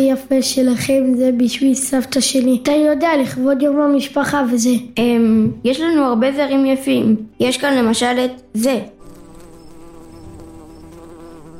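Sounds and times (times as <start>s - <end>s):
speech: 0.0s - 9.0s
bee buzzing around flower bouquet: 9.0s - 11.5s.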